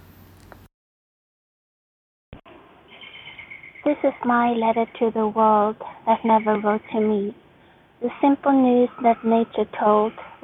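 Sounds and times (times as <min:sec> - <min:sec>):
soft steady outdoor hiss: 0:00.0 - 0:00.7, 0:02.5 - 0:10.4
birds chirping in a forest: 0:02.9 - 0:10.4
speech: 0:03.8 - 0:07.4, 0:08.0 - 0:10.4.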